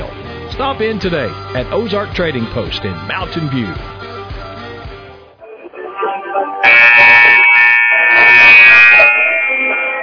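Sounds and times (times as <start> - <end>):
speech: 0.6 - 3.9
basketball scoreboard buzzer ending the quarter: 6.6 - 10.0.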